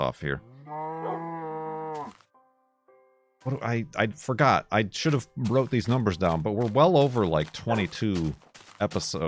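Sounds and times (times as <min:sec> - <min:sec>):
speech: 0:00.0 - 0:01.2, 0:03.4 - 0:09.2
cow mooing: 0:00.4 - 0:02.2.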